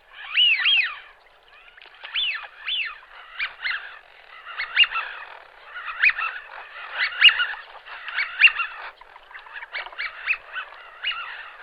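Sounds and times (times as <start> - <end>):
Eurasian wigeon calls: 0.1 - 11.6.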